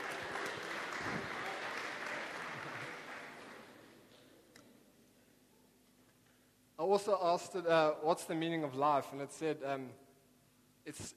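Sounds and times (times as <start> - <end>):
crowd applause: 0.0 - 4.0
speech: 6.8 - 10.0, 10.8 - 11.1.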